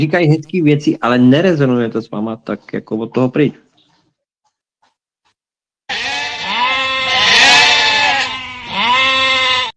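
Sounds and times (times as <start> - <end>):
speech: 0.0 - 3.6
sheep bleating: 5.9 - 9.7.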